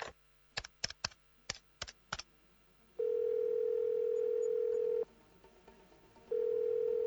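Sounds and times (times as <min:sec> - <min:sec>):
phone ringing tone: 0:03.0 - 0:05.1, 0:06.3 - 0:07.0.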